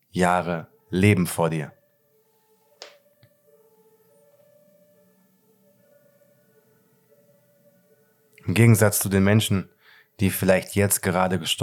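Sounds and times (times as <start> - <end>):
speech: 0.2 - 1.8, 8.5 - 11.6
faint fire engine siren: 1.8 - 8.4.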